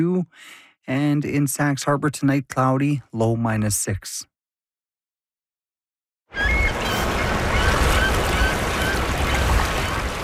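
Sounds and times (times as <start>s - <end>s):
speech: 0.0s - 4.3s
harsh buzzing bird calls under a poplar on a warm sunny spring day: 6.3s - 10.1s.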